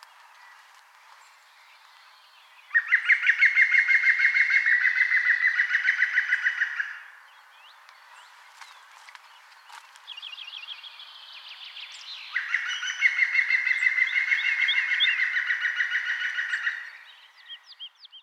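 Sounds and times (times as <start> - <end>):
European green woodpecker calling: 2.6 - 8.0, 11.6 - 17.9.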